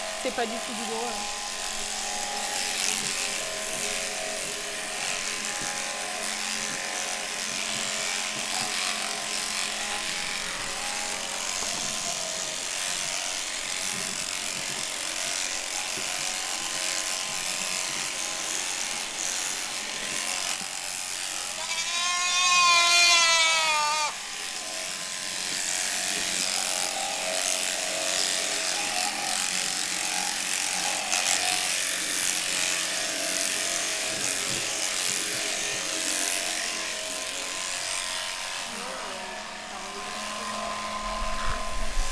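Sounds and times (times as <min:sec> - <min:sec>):
electric shears buzzing while clipping a goat: 0:00.0 - 0:42.1
speech: 0:00.2 - 0:01.4
goats bleating: 0:21.4 - 0:24.2.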